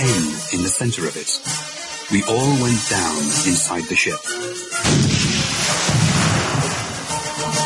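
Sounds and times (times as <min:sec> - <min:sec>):
speech: 0:00.7 - 0:05.4
heavy cannon fire barrage: 0:04.8 - 0:07.3.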